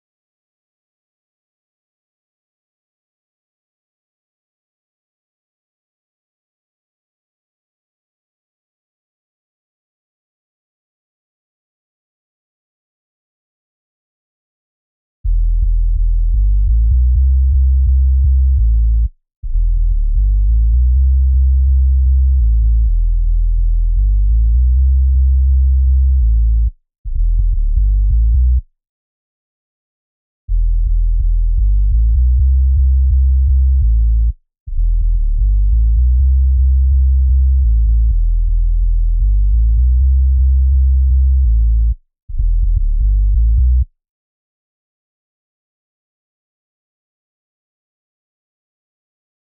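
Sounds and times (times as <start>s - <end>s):
future house sub bass in G: 15.2s - 28.7s, 30.5s - 43.9s.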